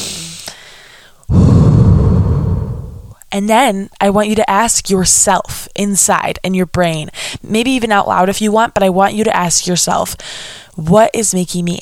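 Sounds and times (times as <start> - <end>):
deep breath taken as a calming exercise: 0.0 - 3.2
speech: 3.4 - 11.8.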